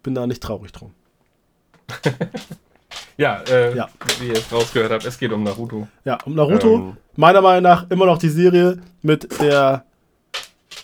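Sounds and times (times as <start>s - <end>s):
speech: 0.0s - 1.0s, 2.0s - 9.9s
laughter: 1.8s - 4.6s, 6.5s - 7.0s
dog claws clacking on a hard floor: 2.4s - 5.8s, 10.3s - 10.8s.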